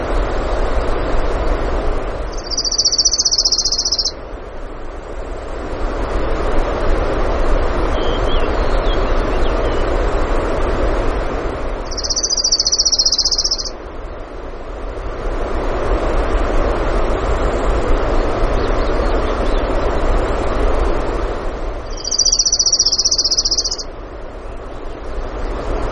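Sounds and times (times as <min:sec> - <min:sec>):
rushing noise: 0:00.0 - 0:25.8
orange-crowned warbler trilling in Denali, Alaska: 0:02.3 - 0:04.2, 0:11.8 - 0:13.8, 0:21.8 - 0:23.9.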